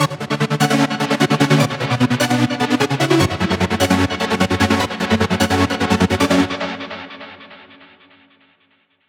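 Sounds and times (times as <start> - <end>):
hybrid advanced hardstyle electronic music: 0.0 - 7.2.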